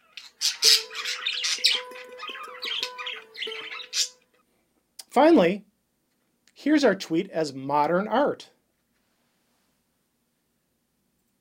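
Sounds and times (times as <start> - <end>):
imagined Carolina parakeet squawking call: 0.0 - 4.2
speech: 5.2 - 5.7, 6.6 - 8.6.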